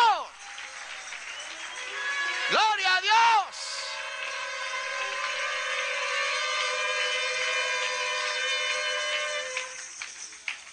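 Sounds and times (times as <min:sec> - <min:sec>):
crowd applauding in Dallas Texas: 0:00.0 - 0:10.7.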